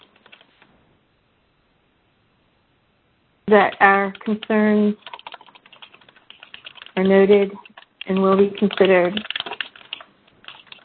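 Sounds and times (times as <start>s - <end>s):
quiet typing on a keyboard: 0.0s - 0.5s, 3.6s - 10.8s
low hiss: 0.0s - 10.8s
speech: 3.5s - 5.1s, 7.0s - 9.3s.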